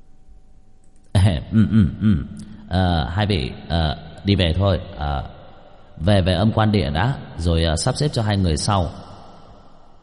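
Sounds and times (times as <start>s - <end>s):
person clearing throat: 1.2s - 2.6s
speech: 1.2s - 5.4s, 6.0s - 9.0s.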